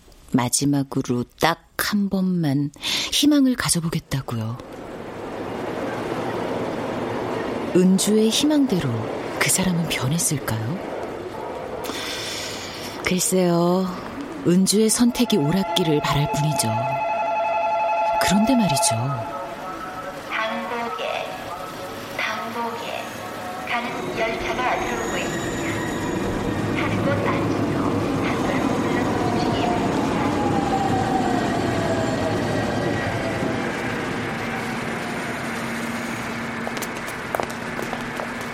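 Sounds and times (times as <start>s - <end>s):
speech: 0.3s - 4.8s, 7.7s - 11.0s, 13.1s - 17.1s, 18.2s - 19.4s
subway train running with a loud steady rumble: 3.1s - 38.5s
thin metallic whine of a subway train: 15.0s - 20.4s.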